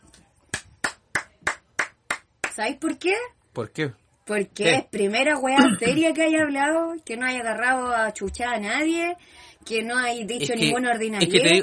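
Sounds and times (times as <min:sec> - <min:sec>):
sharp hand claps: 0:00.5 - 0:03.0
speech: 0:02.6 - 0:11.6.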